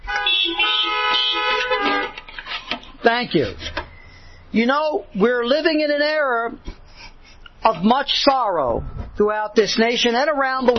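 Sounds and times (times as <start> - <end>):
car horns honking at a church service: 0.0 - 4.5
speech: 3.0 - 3.8, 4.5 - 6.7, 7.6 - 10.7.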